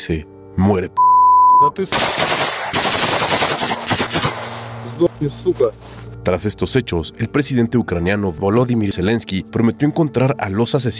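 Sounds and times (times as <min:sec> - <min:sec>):
speech: 0:00.0 - 0:02.4, 0:05.0 - 0:10.9
automatic weapon gunfire bursts: 0:01.9 - 0:04.8
single gunshots: 0:01.9 - 0:05.0.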